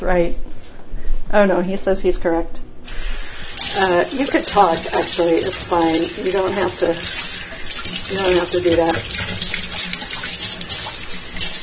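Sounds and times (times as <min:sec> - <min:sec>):
speech: 0:00.0 - 0:00.5, 0:01.3 - 0:02.6, 0:03.8 - 0:07.3, 0:08.1 - 0:09.4
tap water running over celery being washed: 0:03.4 - 0:11.6.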